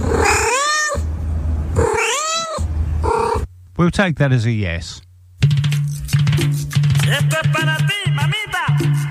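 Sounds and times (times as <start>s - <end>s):
domestic cat meowing: 0.0s - 1.1s, 1.8s - 3.5s
steady low hum: 0.0s - 5.5s
speech: 3.8s - 5.1s, 6.4s - 9.0s.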